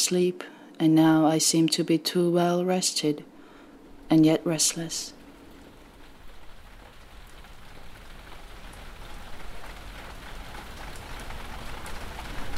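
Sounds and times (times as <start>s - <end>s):
speech: 0.1s - 3.3s, 4.1s - 5.2s
steady rain falling at night onto grapevines: 3.2s - 12.5s.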